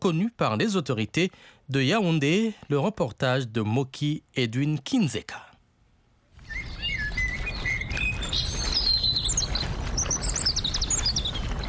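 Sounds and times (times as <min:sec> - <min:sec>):
speech: 0:00.0 - 0:05.5
several birds singing and chirping at sunset in a botanical garden: 0:06.4 - 0:11.6.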